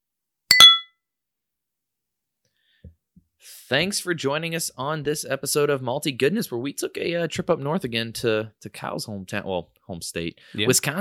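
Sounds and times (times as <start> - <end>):
beer glasses clinking in a toast: 0.5 - 0.9
speech: 3.4 - 10.9.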